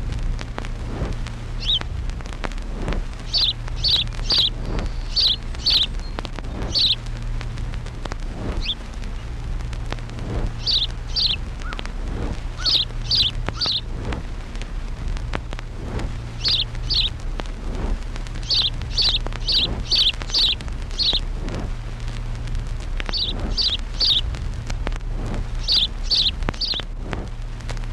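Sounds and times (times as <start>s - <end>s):
steady low hum: 0.0s - 27.9s
house sparrow chirping: 1.6s - 1.8s, 3.2s - 7.0s, 8.6s - 8.8s, 10.5s - 11.9s, 12.6s - 13.9s, 16.3s - 17.1s, 18.4s - 21.3s, 23.0s - 24.3s, 25.6s - 26.9s.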